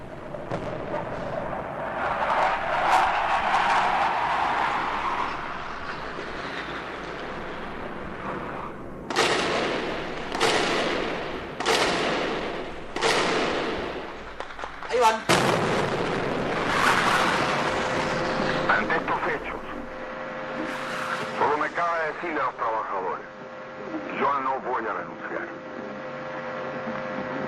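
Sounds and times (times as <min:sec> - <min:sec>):
heavy explosions or gunfire from an air attack: 0:00.0 - 0:20.6
warplanes roaring low in an attack: 0:00.0 - 0:27.4.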